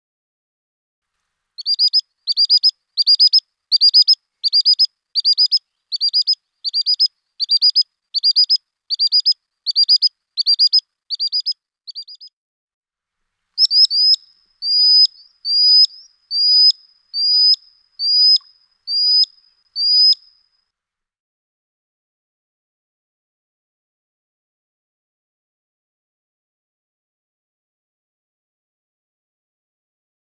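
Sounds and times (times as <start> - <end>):
common sandpiper calling: 1.6 - 12.3, 13.6 - 20.4.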